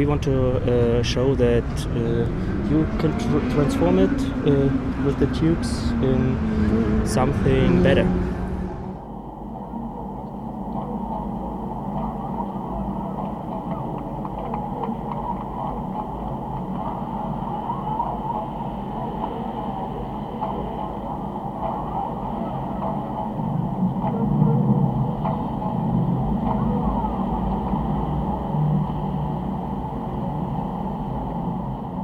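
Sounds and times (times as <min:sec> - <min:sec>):
speech: 0:00.0 - 0:08.4
street traffic rumble of cars and trucks passing: 0:00.0 - 0:32.0.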